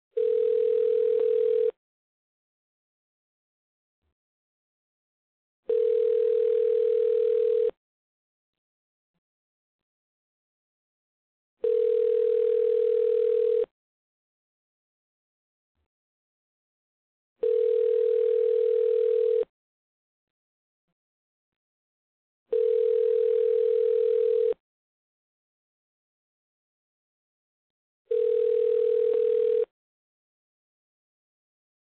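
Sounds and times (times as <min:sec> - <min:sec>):
telephone: 0:00.2 - 0:01.8, 0:05.7 - 0:07.8, 0:11.6 - 0:13.7, 0:17.4 - 0:19.5, 0:22.5 - 0:24.6, 0:28.1 - 0:29.7.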